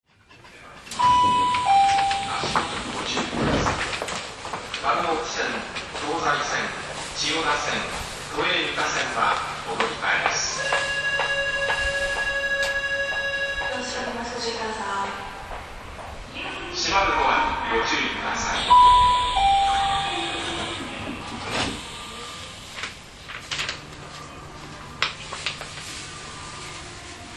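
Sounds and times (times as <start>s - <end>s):
5000 series train running from Otemachi to Jimbocho: 0.4s - 17.2s, 18.2s - 27.3s.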